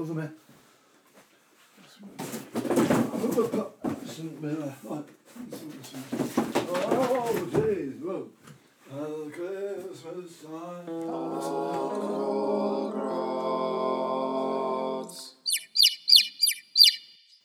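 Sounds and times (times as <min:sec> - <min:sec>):
speech: 0:00.0 - 0:00.5, 0:02.0 - 0:14.2
long steady tonal hum: 0:10.9 - 0:15.3
bright bird chirps: 0:15.4 - 0:17.4.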